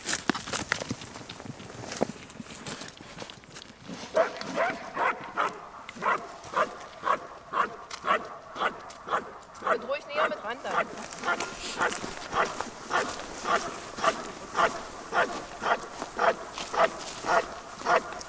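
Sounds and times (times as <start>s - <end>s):
police service dog barking at a padded police officer: 4.1s - 18.2s.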